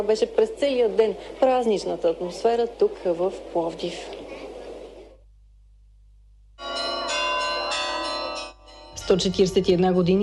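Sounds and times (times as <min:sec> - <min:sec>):
speech: 0:00.0 - 0:04.5, 0:09.1 - 0:10.2
church bells ringing in Plovdiv Bulgaria: 0:06.6 - 0:10.1.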